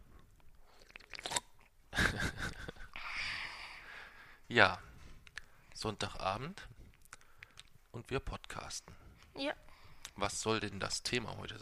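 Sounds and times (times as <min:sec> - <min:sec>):
person slurping a drink: 0:00.6 - 0:01.5
laughter: 0:02.0 - 0:03.0
speech: 0:04.5 - 0:04.8, 0:05.8 - 0:06.8, 0:07.9 - 0:11.6.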